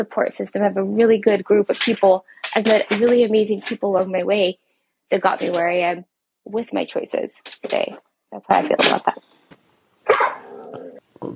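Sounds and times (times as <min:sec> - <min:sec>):
speech: 0:00.0 - 0:09.3
dog barking: 0:10.0 - 0:10.6.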